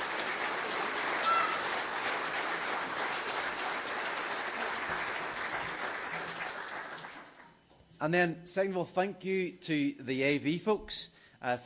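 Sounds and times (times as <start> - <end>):
crowd applause for costumed performers: 0.0 - 7.5
speech: 8.0 - 11.6.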